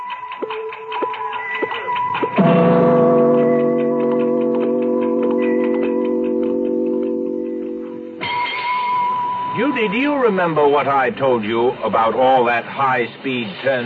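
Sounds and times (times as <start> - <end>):
large clock ticking: 0.0 - 8.3
loud sustained ringing tone: 2.4 - 10.5
speech: 9.8 - 13.8.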